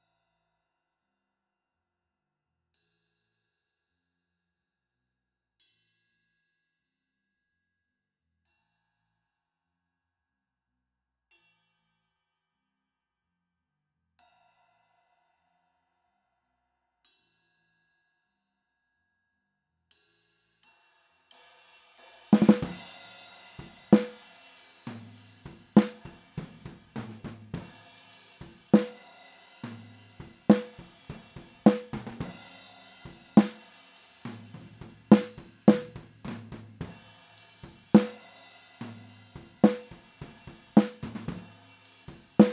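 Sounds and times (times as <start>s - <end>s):
snare drums recorded with SM57 microphone: 22.3s - 42.5s.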